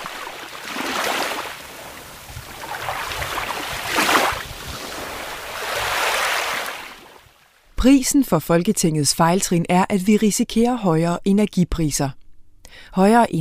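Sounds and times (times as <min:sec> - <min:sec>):
waves washing up on a beach in Denmark: 0:00.0 - 0:07.6
speech: 0:07.8 - 0:13.3.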